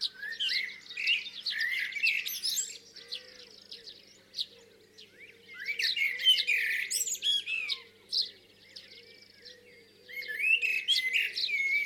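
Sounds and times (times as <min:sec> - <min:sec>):
high twittering from other birds: 0:00.0 - 0:11.8.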